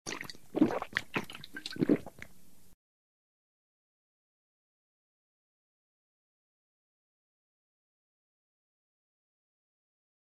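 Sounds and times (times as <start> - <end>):
person drinking beer: 0.1 - 2.3.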